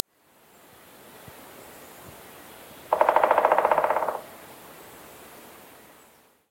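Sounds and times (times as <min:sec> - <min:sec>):
Pileated Woodpecker Dryocopus pileatus: 0:02.9 - 0:04.3.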